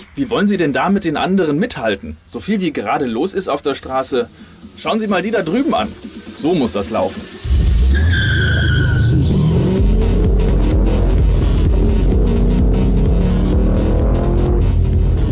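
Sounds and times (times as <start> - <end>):
speech: 0.2 - 8.1
flashy car engine revving on a street: 4.3 - 15.3.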